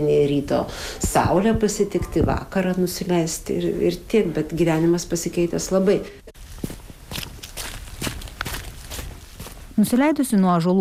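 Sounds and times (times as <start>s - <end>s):
speech: 0.0s - 6.2s, 9.8s - 10.7s
footsteps walking down a path toward a homestead in a Lithuanian river valley: 6.4s - 10.0s.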